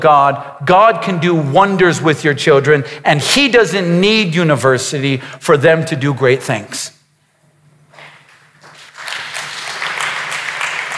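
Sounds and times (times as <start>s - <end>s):
speech: 0.0s - 7.0s
audience applause: 8.6s - 10.9s.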